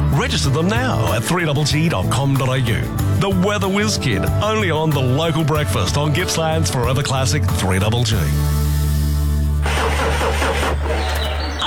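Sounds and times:
speech: 0:00.2 - 0:08.6
car engine cranking but failing to start: 0:09.6 - 0:11.6.

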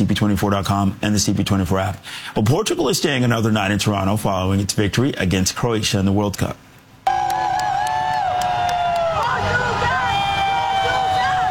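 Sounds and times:
speech: 0:00.0 - 0:06.6
fans lining the streets babbling and cheering: 0:07.1 - 0:11.4
team bus engine drone: 0:07.1 - 0:11.4.

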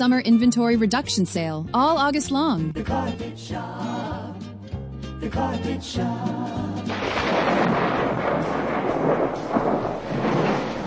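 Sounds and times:
speech: 0:00.0 - 0:04.1, 0:05.2 - 0:07.8
deep rolling thunder from a big storm: 0:06.9 - 0:10.8
dense wash of storm noise: 0:06.9 - 0:10.8.

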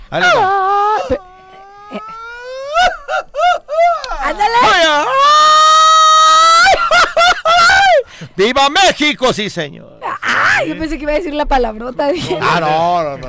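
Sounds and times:
speech: 0:00.1 - 0:01.3, 0:08.4 - 0:09.9, 0:10.6 - 0:13.2
Mexican mariachi grito with warbling trills: 0:00.1 - 0:08.1, 0:10.0 - 0:10.7.

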